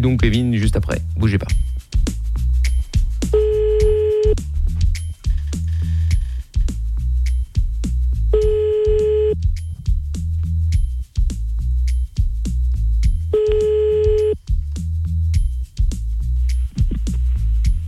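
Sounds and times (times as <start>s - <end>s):
speech: 0.0s - 2.1s
continuous low rhythmic background: 0.0s - 17.8s
telephone ringback tone from a prank call being placed: 3.4s - 4.4s, 8.4s - 9.4s, 13.4s - 14.4s.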